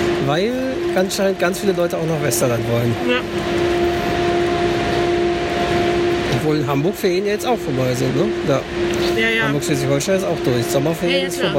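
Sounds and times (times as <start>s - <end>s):
idling train drone and hum at a busy railway platform: 0.0s - 11.5s
speech: 0.3s - 3.9s, 6.4s - 11.5s.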